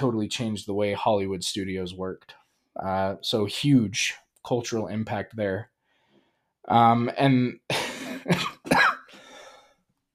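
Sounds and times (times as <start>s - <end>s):
speech: 0.0s - 5.7s, 6.6s - 8.5s
person coughing from a lingering cough: 7.7s - 9.4s
raspy breathy wheeze: 9.1s - 9.8s.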